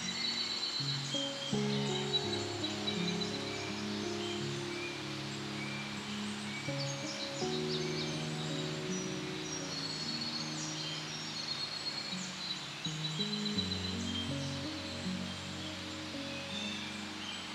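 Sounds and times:
small forest birds chirping brightly: 0:00.0 - 0:17.5
soft slowly shifting music chords: 0:00.0 - 0:17.5
wind rustling in the forest: 0:00.0 - 0:17.5.

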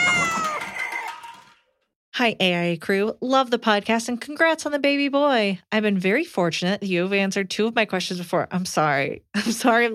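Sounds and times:
cat meowing: 0:00.0 - 0:00.9
speech: 0:02.2 - 0:09.9.

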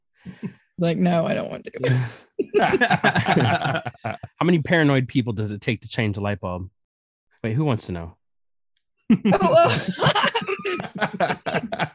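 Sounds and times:
speech: 0:00.3 - 0:06.8, 0:07.4 - 0:08.2, 0:09.1 - 0:10.4, 0:11.0 - 0:11.9
laughter: 0:01.2 - 0:06.6, 0:09.1 - 0:11.9
person coughing: 0:01.8 - 0:04.3, 0:09.1 - 0:11.9.

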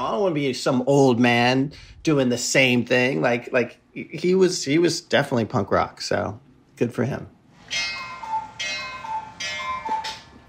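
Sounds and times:
speech: 0:00.2 - 0:08.0
cuckoo clock calling in a house: 0:07.7 - 0:10.4.

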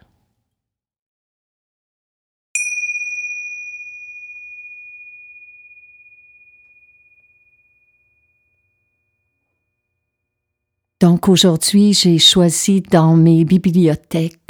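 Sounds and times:
meditation bell struck and ringing: 0:02.6 - 0:10.0
speech: 0:11.0 - 0:14.4.

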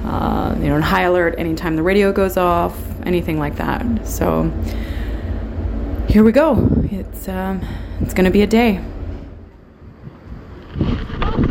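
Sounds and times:
boat engine rumbling on open water: 0:00.0 - 0:11.4
wind noise: 0:00.0 - 0:11.4
speech: 0:00.1 - 0:05.0, 0:06.1 - 0:08.9.

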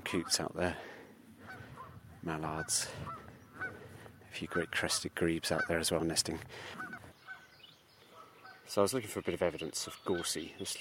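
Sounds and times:
Canada geese honking: 0:00.1 - 0:00.6, 0:01.4 - 0:08.8, 0:09.6 - 0:10.6
speech: 0:00.1 - 0:00.9, 0:02.2 - 0:03.2, 0:04.4 - 0:06.8, 0:08.7 - 0:10.7.

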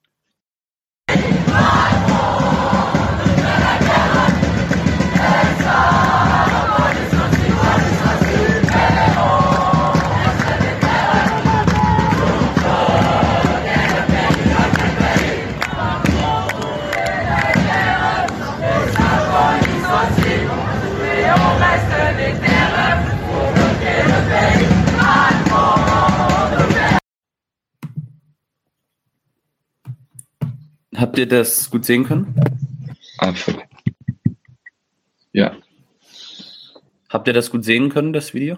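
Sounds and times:
crowd of protesters in France shouting and chanting: 0:01.1 - 0:27.0
speech: 0:31.2 - 0:33.6, 0:37.1 - 0:38.5.

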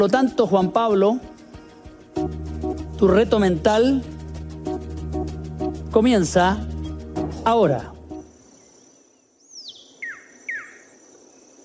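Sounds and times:
speech: 0:00.0 - 0:01.3, 0:03.0 - 0:04.1, 0:06.0 - 0:06.7, 0:07.4 - 0:08.0
long-billed wren Cantorquilus longirostris singing downward-sweeping whistled notes: 0:08.0 - 0:11.5.

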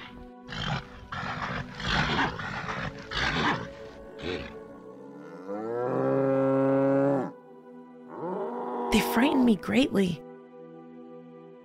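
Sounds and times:
giant bulls bellowing and roaring: 0:00.0 - 0:07.3
speech: 0:09.2 - 0:10.3.

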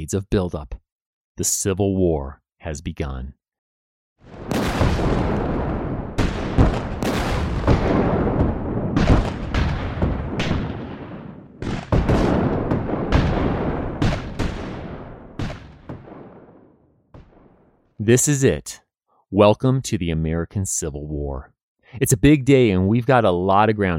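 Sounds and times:
speech: 0:00.0 - 0:00.8, 0:01.4 - 0:03.4, 0:18.0 - 0:23.9
artillery batteries firing on a fort: 0:04.2 - 0:17.7.

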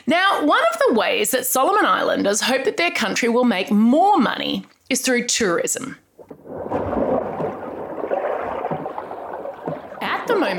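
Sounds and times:
speech: 0:00.0 - 0:06.0
scuba divers underwater bubbling and gurgling: 0:06.2 - 0:10.5.

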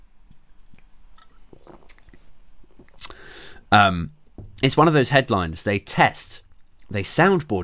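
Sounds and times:
person sipping beer: 0:00.7 - 0:03.7
speech: 0:03.7 - 0:07.6.

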